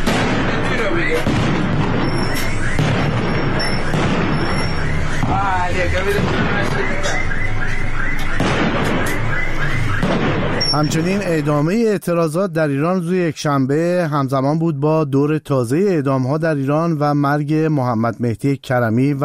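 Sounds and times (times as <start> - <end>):
rapid continuous gunfire: 0.0 - 11.6
booming explosions: 0.0 - 11.8
thin high alarm-like whine: 1.9 - 11.9
speech: 5.7 - 7.0, 10.7 - 19.2.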